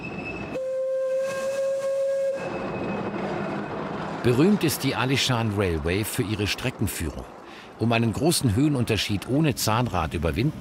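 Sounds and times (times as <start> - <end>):
steam locomotive whistle: 0.0 - 3.2
speech: 4.2 - 10.5.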